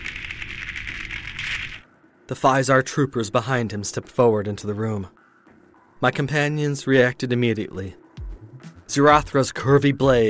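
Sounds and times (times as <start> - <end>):
sizzling electrical crackle with hissing hum and snapping pops: 0.0 - 1.8
speech: 2.3 - 5.2, 6.0 - 8.0, 8.9 - 10.2.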